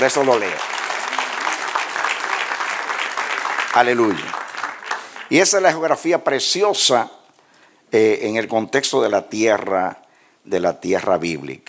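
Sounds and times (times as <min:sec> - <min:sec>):
speech: 0:00.0 - 0:00.8, 0:03.7 - 0:04.4, 0:05.3 - 0:07.2, 0:07.9 - 0:11.6
congregation applause during a church sermon: 0:00.0 - 0:05.6.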